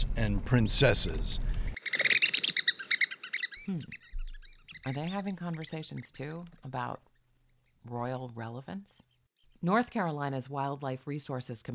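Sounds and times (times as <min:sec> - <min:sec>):
speech: 0:00.0 - 0:01.6, 0:03.7 - 0:04.0, 0:04.8 - 0:07.1, 0:07.8 - 0:11.7
red-cockaded woodpeckers chirping and chattering: 0:01.7 - 0:08.3, 0:08.9 - 0:09.7.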